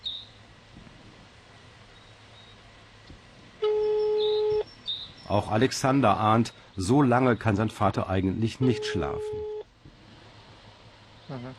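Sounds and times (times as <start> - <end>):
faint hiss: 0.0 - 11.5
steady telephone tone from dialing a missing man's number during a night search in Russia: 3.6 - 4.7, 8.6 - 9.7
speech: 5.3 - 9.5, 11.3 - 11.5.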